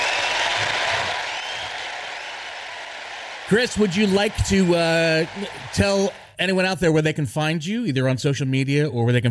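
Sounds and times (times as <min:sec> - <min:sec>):
group applauding for a guest: 0:00.0 - 0:06.4
speech: 0:03.5 - 0:09.3.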